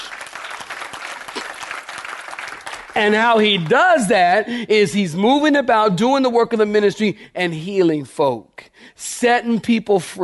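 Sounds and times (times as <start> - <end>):
audience clapping hands: 0.0 - 4.4
speech: 3.0 - 10.2.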